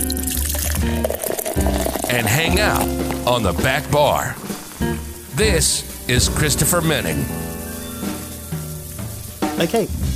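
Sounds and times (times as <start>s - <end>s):
drink pouring into a glass: 0.0s - 4.9s
speech: 2.1s - 7.6s, 9.6s - 10.1s.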